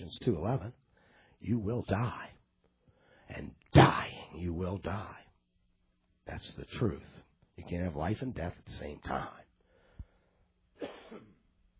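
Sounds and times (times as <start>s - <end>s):
speech: 0.1s - 0.8s, 1.4s - 2.4s, 3.3s - 5.2s, 6.3s - 9.4s, 10.8s - 11.3s
person coughing: 10.8s - 11.5s.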